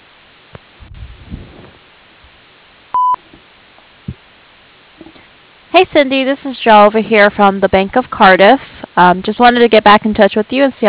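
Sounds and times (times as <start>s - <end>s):
voicemail beep tone on a phone line: 3.0s - 3.2s
speech: 5.8s - 10.8s.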